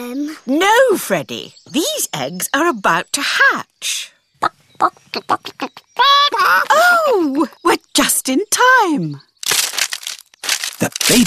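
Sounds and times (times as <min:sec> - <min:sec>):
speech: 0:00.0 - 0:09.3, 0:10.8 - 0:11.2
chickens clucking: 0:04.4 - 0:06.8.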